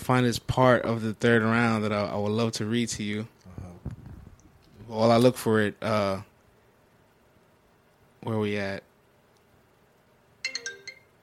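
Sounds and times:
faint hum: 0.0s - 11.2s
speech: 0.1s - 3.4s, 4.9s - 6.3s, 8.2s - 8.9s
phone ringtone of four bright electronic notes: 10.4s - 11.2s.

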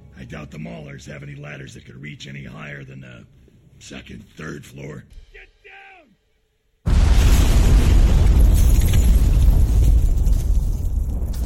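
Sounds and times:
speech: 0.2s - 5.5s
pipe bomb exploding inside a building: 6.9s - 11.4s.

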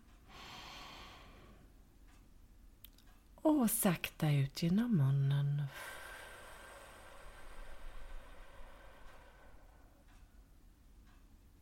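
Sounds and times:
long deep breath drawn in through the nose as a breathing exercise: 0.3s - 1.6s, 5.8s - 10.0s
speech: 3.4s - 6.0s.

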